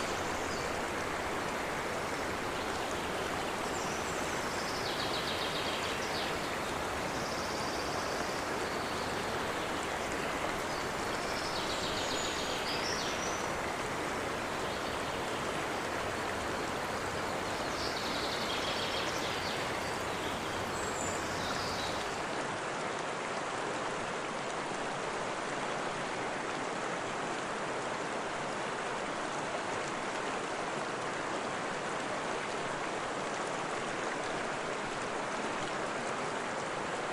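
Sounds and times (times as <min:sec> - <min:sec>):
diverse bird species singing in a forest: 0:00.0 - 0:22.2
river water flowing, trickling and babbling in a forest: 0:00.0 - 0:37.1.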